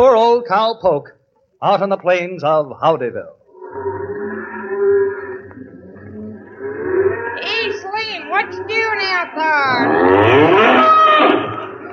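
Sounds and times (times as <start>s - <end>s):
speech: 0.0s - 4.0s, 7.4s - 11.5s
cow mooing: 3.6s - 11.9s.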